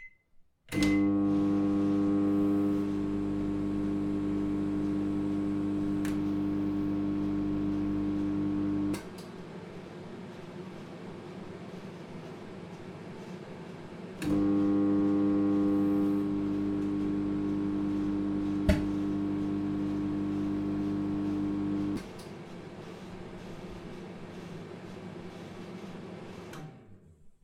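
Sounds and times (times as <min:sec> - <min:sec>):
microwave oven: 0:00.7 - 0:27.0.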